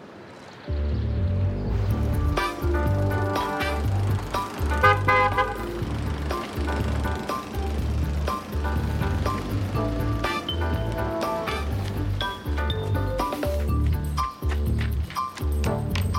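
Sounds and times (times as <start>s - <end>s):
car driving by with low engine rumble: 0.8s - 16.1s
car horn honking: 4.6s - 5.9s.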